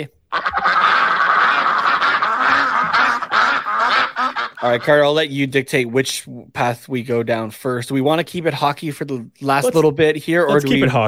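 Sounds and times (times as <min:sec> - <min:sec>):
speech: 0:00.0 - 0:00.4, 0:04.6 - 0:11.0
ducks quacking in a dense chorus: 0:00.3 - 0:05.2.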